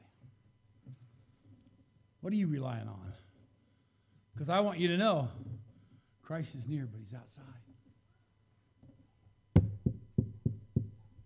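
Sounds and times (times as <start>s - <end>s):
speech: 2.2s - 3.1s, 4.4s - 5.5s, 6.3s - 7.7s
firm knocking on a wooden door: 9.6s - 11.0s.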